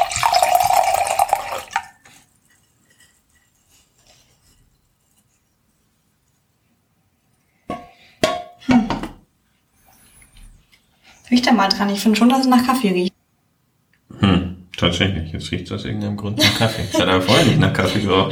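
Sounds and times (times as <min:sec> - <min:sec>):
white wine pouring into a glass: 0:00.0 - 0:02.0
speech: 0:11.3 - 0:13.1, 0:14.8 - 0:18.2
laughter: 0:16.4 - 0:18.2.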